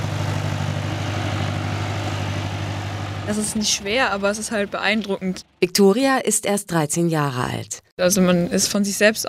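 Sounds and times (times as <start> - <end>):
heavy tractor engine pulling away slowly: 0.0 - 5.6
speech: 3.3 - 9.2.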